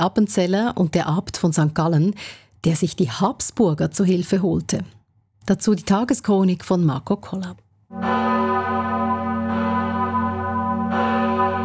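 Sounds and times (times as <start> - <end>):
speech: 0.0 - 8.5
large parish church bell tolling in Appenzell: 7.9 - 11.6.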